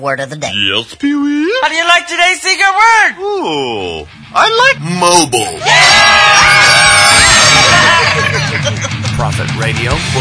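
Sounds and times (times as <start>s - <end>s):
speech: 0.0s - 7.1s, 9.2s - 10.1s
audience screaming and yelling on a cue word: 5.6s - 8.8s
laughter: 7.4s - 9.5s.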